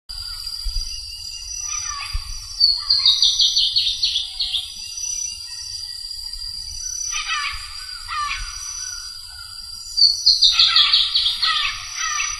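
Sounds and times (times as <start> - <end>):
Drymophila rubricollis calling: 1.4 - 4.7, 6.8 - 12.3.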